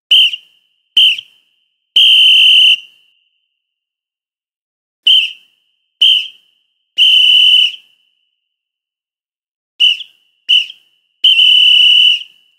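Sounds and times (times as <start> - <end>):
referee's whistle: 0.1 - 3.3, 5.0 - 8.2, 9.8 - 12.5.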